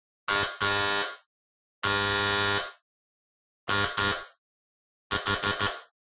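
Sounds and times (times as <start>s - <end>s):
household door buzzer: 0.3s - 2.8s, 3.7s - 4.4s, 5.1s - 6.0s.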